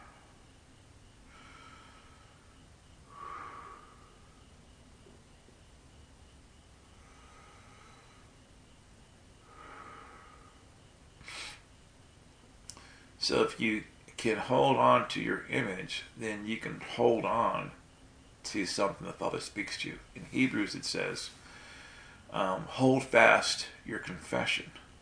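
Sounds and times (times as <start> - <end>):
quiet hiss: 0.0 - 25.0
slow deep breathing during warm-up breathing exercise: 1.2 - 4.8, 6.8 - 11.7, 12.7 - 13.2, 21.3 - 22.3
speech: 13.3 - 17.8, 18.5 - 21.4, 22.3 - 24.8.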